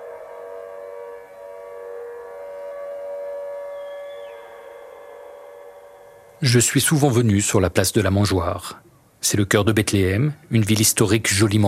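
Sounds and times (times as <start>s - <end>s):
outdoor civil defense siren wailing: 0.0s - 6.6s
speech: 6.4s - 11.6s.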